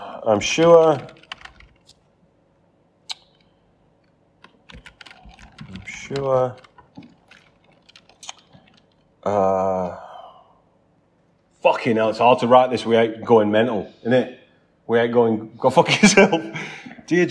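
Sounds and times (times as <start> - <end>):
speech: 0.2 - 1.2, 6.1 - 6.7, 9.2 - 10.0, 11.6 - 17.2
computer keyboard typing: 0.3 - 2.1, 3.1 - 9.2.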